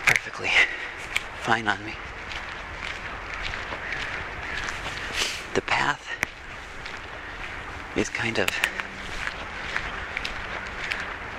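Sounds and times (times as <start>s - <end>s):
running footsteps on packed fine gravel path: 0.0s - 11.3s
speech: 1.5s - 2.1s, 5.8s - 6.2s, 8.0s - 8.8s.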